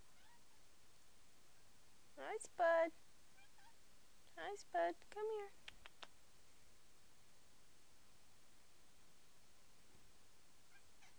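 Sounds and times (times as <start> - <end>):
steady hiss: 0.0 - 11.1
faint cat meow: 0.1 - 0.5, 3.4 - 3.8, 10.7 - 11.1
speech: 2.2 - 3.1, 4.4 - 5.6.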